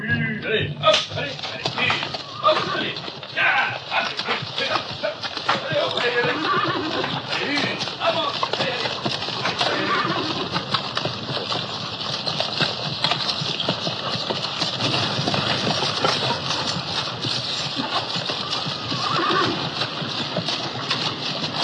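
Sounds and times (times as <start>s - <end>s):
people calling out: 0.0s - 8.9s, 9.5s - 10.5s
busy clatter of hooves: 0.4s - 21.6s
speech: 0.5s - 1.6s
horses whinnying and snorting: 0.8s - 21.6s.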